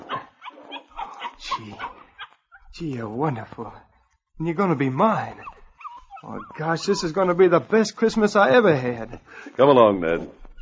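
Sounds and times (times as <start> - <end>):
puppy giving short high yips and whimpers: 0.0 - 2.7, 5.1 - 7.4, 10.4 - 10.5
speech: 1.6 - 2.0, 2.7 - 5.5, 6.2 - 10.4.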